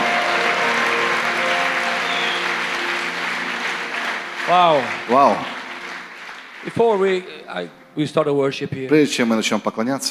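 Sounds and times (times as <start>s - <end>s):
sizable audience applause: 0.0s - 7.6s
speech: 4.5s - 5.6s, 6.6s - 10.0s.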